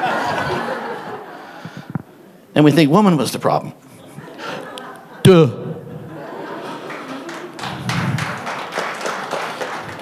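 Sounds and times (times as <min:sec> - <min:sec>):
laughter: 0:00.0 - 0:01.8, 0:03.9 - 0:08.4
speech: 0:02.6 - 0:03.8, 0:05.3 - 0:05.6
women at the back of the audience clapping during a sermon: 0:06.5 - 0:10.0.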